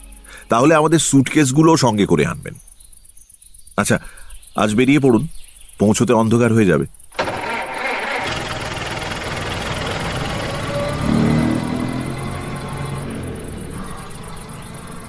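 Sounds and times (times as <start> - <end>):
speech: 0.5 - 2.7, 3.8 - 7.0
car engine starting and idling: 7.2 - 15.0.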